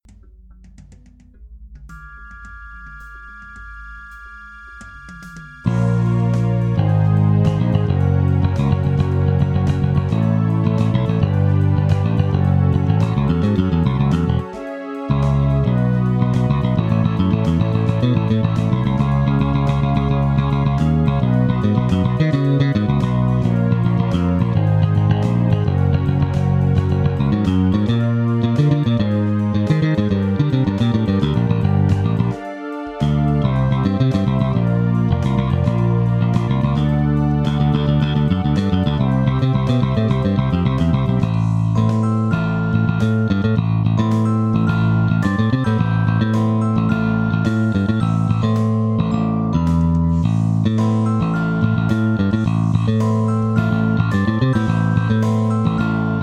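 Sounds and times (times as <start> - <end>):
Jazz Bass bass guitar played with pick: 5.6 - 56.2.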